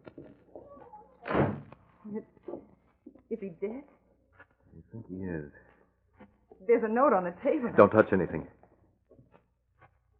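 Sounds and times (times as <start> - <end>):
door swinging shut with a heavy thud: 1.2 - 1.8
speech: 2.1 - 2.6, 3.4 - 4.0, 4.9 - 5.7, 6.6 - 8.6.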